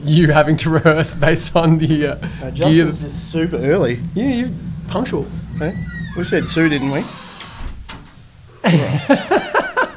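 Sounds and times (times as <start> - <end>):
speech: 0.0 - 7.2, 8.6 - 9.5
door creaking open: 1.6 - 8.2.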